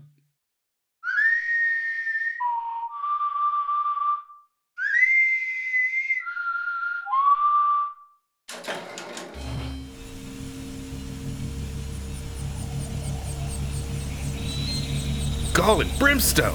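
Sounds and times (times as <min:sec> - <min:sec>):
person whistling sliding falling notes: 0:01.0 - 0:07.9
loud steady mechanical grinding and rumbling: 0:08.5 - 0:16.5
speech: 0:15.6 - 0:16.5.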